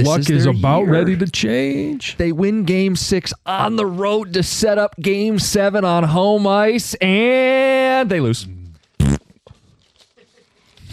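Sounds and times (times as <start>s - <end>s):
speech: 0.0s - 8.6s
buzzing fart noise blurted by a voice: 9.0s - 9.3s.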